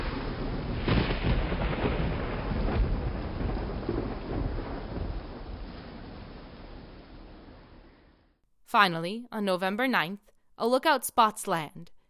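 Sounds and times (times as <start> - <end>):
deep thunder rumbling through a stormy sky at sea: 0.0 - 8.3
heavy rain pouring at sea: 0.0 - 8.3
speech: 8.7 - 12.0.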